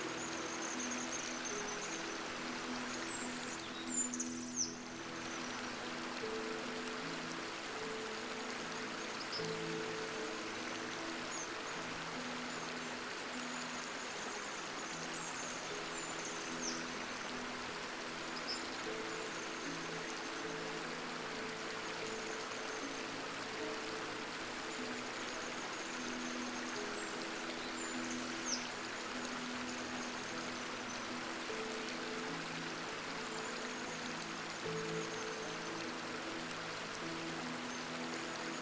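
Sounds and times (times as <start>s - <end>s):
flowing stream water: 0.0s - 38.5s.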